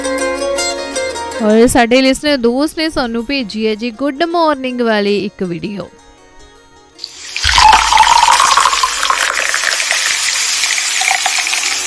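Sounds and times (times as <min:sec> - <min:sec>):
speech: 0:01.4 - 0:06.0
tea pouring into a cup: 0:07.0 - 0:11.8.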